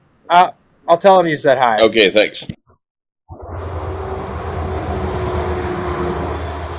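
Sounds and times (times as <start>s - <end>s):
speech: 0.3s - 2.6s
passing train rumbling: 3.4s - 6.7s.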